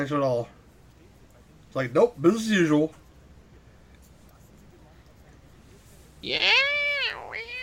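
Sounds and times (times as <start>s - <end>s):
speech: 0.0s - 0.6s, 1.7s - 3.0s, 6.2s - 6.8s
cat meowing: 6.2s - 7.6s.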